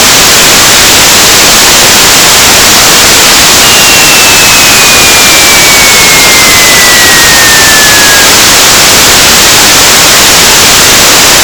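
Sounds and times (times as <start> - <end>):
BPSK digital data signal tones: 0.0 - 11.4.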